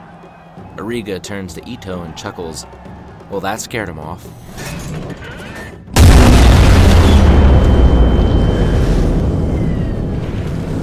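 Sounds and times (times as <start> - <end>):
speech: 0.8 - 5.4
18-inch naval guns firing at aircraft from a warship's deck: 6.0 - 10.8.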